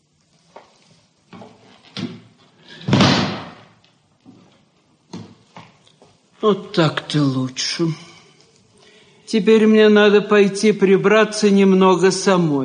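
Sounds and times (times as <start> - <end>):
door pushed shut with a heavy thud: 2.0 - 3.8
speech: 6.4 - 8.1, 9.3 - 12.6.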